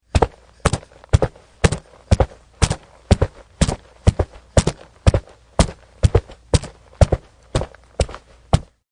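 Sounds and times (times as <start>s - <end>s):
fast walking footsteps: 0.0s - 8.8s.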